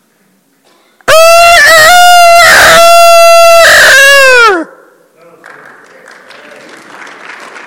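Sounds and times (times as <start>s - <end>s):
person imitating a rooster crow: 1.1s - 4.7s
applause: 5.3s - 7.6s.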